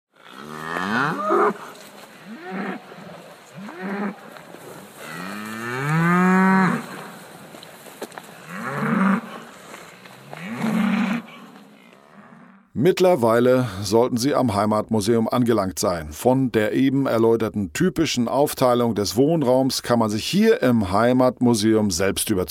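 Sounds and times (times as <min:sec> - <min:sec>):
cow mooing: 0:00.2 - 0:04.2, 0:05.0 - 0:07.1, 0:08.4 - 0:12.7
speech: 0:01.5 - 0:01.7, 0:12.8 - 0:22.4.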